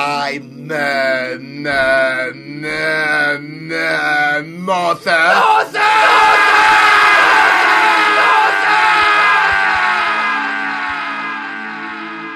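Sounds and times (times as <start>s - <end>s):
speech: 0.3s - 6.4s
person screaming loudly: 5.3s - 11.2s.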